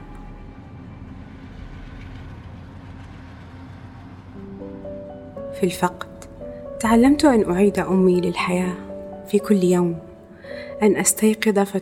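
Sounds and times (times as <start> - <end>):
train running on rails: 0.0 - 8.6
speech: 4.4 - 6.1, 6.8 - 11.8.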